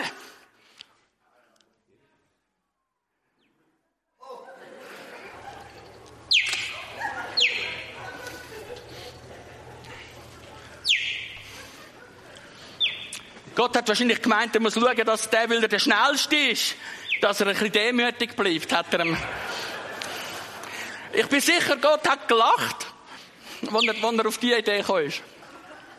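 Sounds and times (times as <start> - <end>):
laughter: 4.2 - 22.7, 23.6 - 25.9
cheetah giving high bird-like chirps: 6.2 - 9.2, 10.4 - 13.4, 16.9 - 17.5, 23.6 - 24.2
speech: 13.6 - 19.7, 21.2 - 22.8, 23.6 - 25.3.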